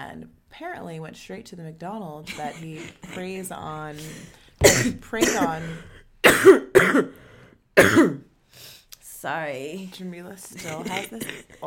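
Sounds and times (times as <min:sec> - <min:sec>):
speech: 0:00.0 - 0:07.2, 0:07.8 - 0:08.3, 0:09.2 - 0:11.6
harsh coughing: 0:02.3 - 0:08.3, 0:10.6 - 0:11.6.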